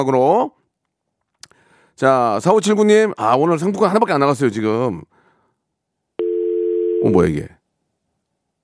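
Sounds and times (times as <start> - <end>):
speech: 0.0 - 0.6, 2.0 - 5.2, 7.0 - 7.6
steady single-pitched telephone busy or call-waiting tone: 6.2 - 7.2.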